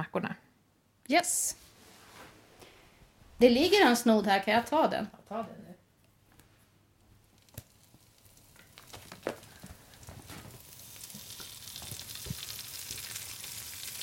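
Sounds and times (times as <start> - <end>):
speech: 0.0 - 0.4, 1.1 - 1.6, 3.4 - 5.7
chanterelle mushrooms sizzling in a hot pan in Västerbotten: 7.3 - 14.0.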